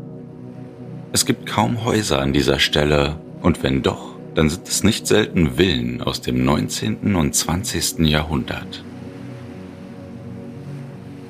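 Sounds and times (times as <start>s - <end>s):
sea waves washing against a sandy coastal point near the Brittany border: 0.0s - 11.2s
speech: 1.1s - 9.0s.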